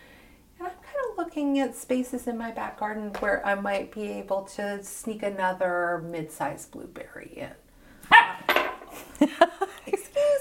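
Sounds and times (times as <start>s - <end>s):
speech: 1.4s - 7.6s, 9.2s - 9.6s
dog barking: 8.1s - 8.5s.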